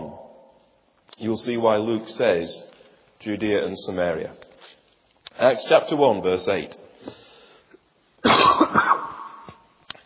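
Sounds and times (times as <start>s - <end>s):
speech: 1.2s - 4.5s, 5.4s - 7.2s
person coughing into microphone: 8.2s - 9.6s.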